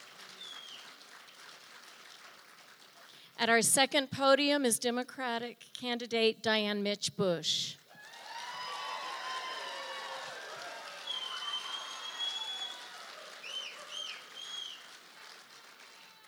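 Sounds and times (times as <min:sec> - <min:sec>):
audience applauding debate candidates: 0:00.0 - 0:03.4, 0:07.9 - 0:16.2
high whistles and cheers: 0:00.3 - 0:01.0, 0:07.9 - 0:16.2
speech: 0:03.4 - 0:07.8.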